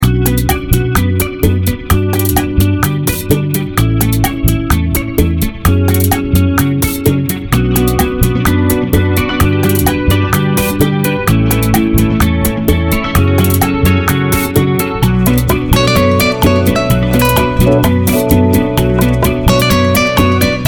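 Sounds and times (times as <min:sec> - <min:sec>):
Latin bachata music: 0:00.0 - 0:20.6.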